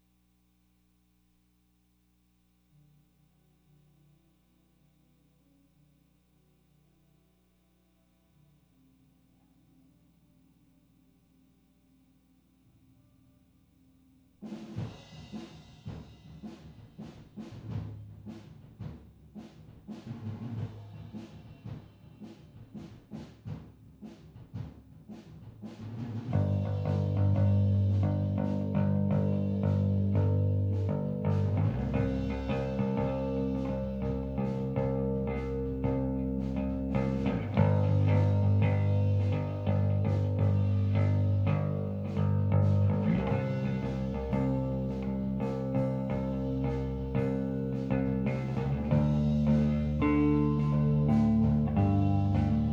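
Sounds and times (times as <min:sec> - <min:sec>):
bass recorded with stereo SM57 microphones: 0:22.8 - 0:52.7.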